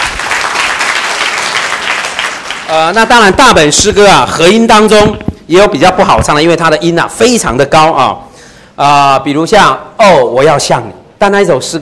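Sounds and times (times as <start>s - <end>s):
audience applause after a hymn performance: 0.0s - 3.0s
speech: 2.7s - 11.8s.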